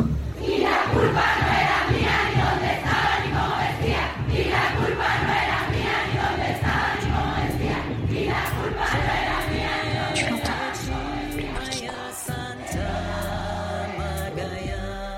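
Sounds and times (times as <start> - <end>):
large crowd of protesting women roaring and chanting: 0.4 - 15.1.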